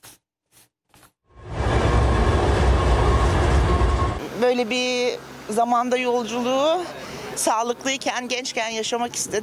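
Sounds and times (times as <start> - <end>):
historic passenger train rolling on rails at a station in Turkey: 1.4 - 5.6
speech: 4.5 - 9.4.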